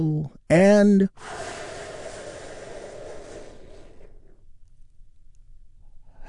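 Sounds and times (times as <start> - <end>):
speech: 0.0 - 1.6
deep breath during a relaxation exercise: 1.2 - 4.6, 5.9 - 6.2.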